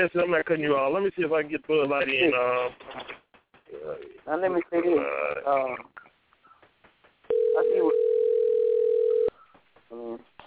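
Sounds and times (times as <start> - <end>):
speech: 0.0 - 6.0, 9.9 - 10.3
telephone ringing: 7.3 - 9.4.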